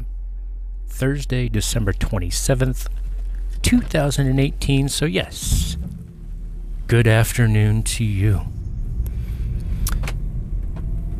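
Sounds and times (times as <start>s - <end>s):
steady low car rumble: 0.0s - 11.1s
speech: 1.0s - 5.8s, 6.9s - 8.6s
clatters and rustles of someone climbing into a car seat: 5.4s - 6.8s.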